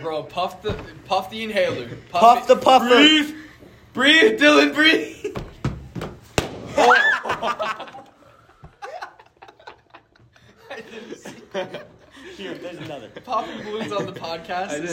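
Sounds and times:
speech: 0:00.0 - 0:03.4, 0:04.0 - 0:05.4, 0:06.8 - 0:07.9, 0:10.8 - 0:14.9
balloons popping: 0:05.4 - 0:07.0
people laughing: 0:06.7 - 0:14.9.

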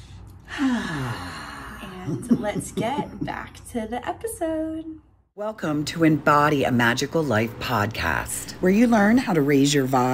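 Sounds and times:
deep breath drawn during a guided meditation: 0:00.0 - 0:01.9
speech: 0:02.1 - 0:10.1.

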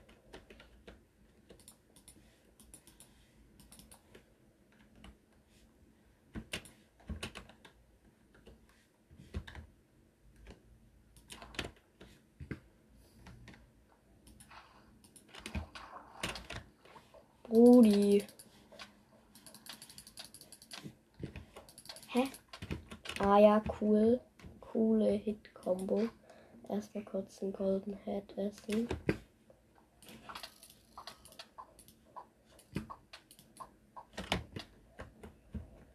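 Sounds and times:
typing a chat message on a computer keyboard: 0:00.0 - 0:04.2, 0:06.4 - 0:07.8, 0:10.4 - 0:11.8, 0:14.2 - 0:16.7, 0:17.5 - 0:23.3, 0:30.0 - 0:35.3
speech: 0:17.5 - 0:18.3, 0:23.3 - 0:29.1.

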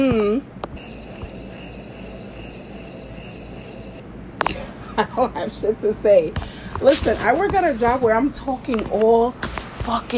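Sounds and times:
crickets chirping: 0:00.8 - 0:04.0
speech: 0:05.2 - 0:10.1.

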